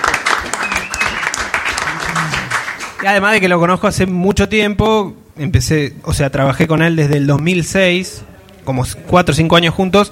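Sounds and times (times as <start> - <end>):
audience applause: 0.0 - 3.1
whistle-like tone: 0.6 - 1.3
speech: 3.0 - 10.1.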